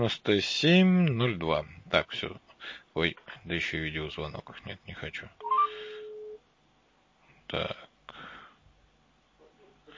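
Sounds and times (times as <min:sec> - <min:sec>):
speech: 0:00.0 - 0:05.5, 0:07.5 - 0:07.8
faint hiss: 0:00.0 - 0:09.9
outgoing call telephone tone: 0:05.4 - 0:06.4.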